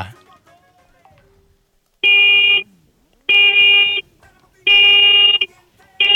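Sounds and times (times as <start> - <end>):
Volkswagen Beetle car horn honks: 2.0 - 6.1.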